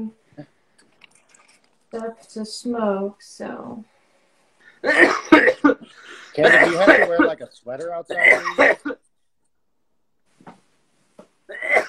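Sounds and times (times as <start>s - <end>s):
speech: 1.9s - 3.9s, 4.8s - 9.0s
man coughing: 4.8s - 9.0s, 11.5s - 11.8s.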